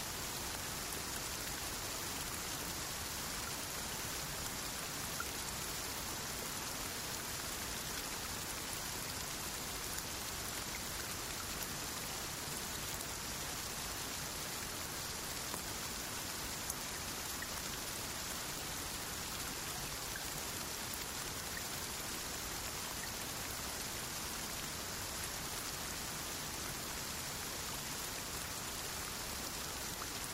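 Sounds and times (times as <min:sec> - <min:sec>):
gentle rain pattering on a surface: 0:00.0 - 0:30.3.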